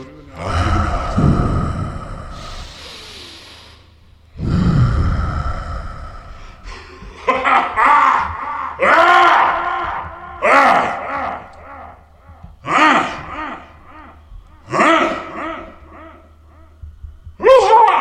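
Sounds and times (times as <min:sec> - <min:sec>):
person talking in short bursts: 0:00.0 - 0:02.6
deep breathing in through the nose: 0:00.5 - 0:07.2
laughter: 0:06.6 - 0:12.1, 0:12.7 - 0:16.4.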